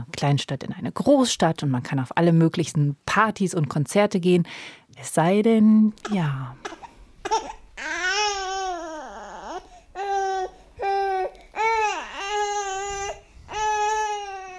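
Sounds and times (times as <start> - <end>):
speech: 0.2 - 6.8
baby crying and babbling: 6.6 - 14.5.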